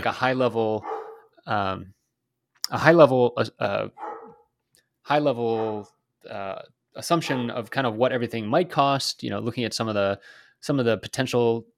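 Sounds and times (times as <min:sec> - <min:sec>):
speech: 0:00.0 - 0:02.0, 0:02.7 - 0:04.1, 0:05.0 - 0:11.7
dogs barking: 0:00.8 - 0:01.4, 0:03.9 - 0:04.5, 0:05.5 - 0:05.9, 0:07.2 - 0:07.6.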